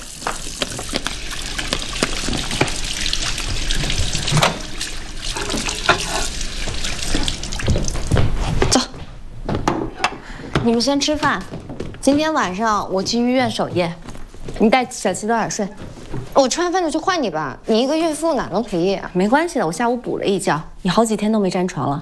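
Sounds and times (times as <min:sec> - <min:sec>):
hands washed under a running tap: 0:00.0 - 0:08.4
speech: 0:10.7 - 0:14.0, 0:14.6 - 0:15.8, 0:16.4 - 0:21.9.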